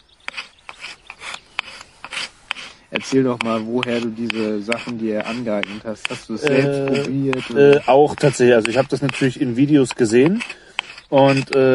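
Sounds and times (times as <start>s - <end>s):
back of a knife blade scraping wood shavings for fatwood kindling: 0.0s - 11.7s
speech: 2.9s - 11.7s.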